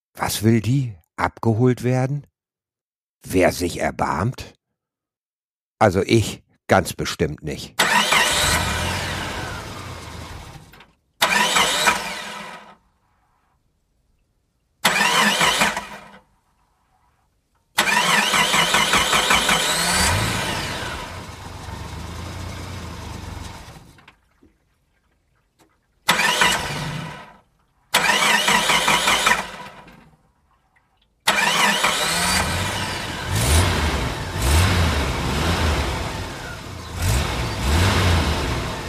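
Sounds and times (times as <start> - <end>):
speech: 0.2 - 2.3, 3.2 - 4.6, 5.8 - 7.8
car engine cranking but failing to start: 7.8 - 12.7, 14.8 - 16.2, 17.8 - 24.1, 26.1 - 27.3, 27.9 - 30.0, 31.3 - 38.8.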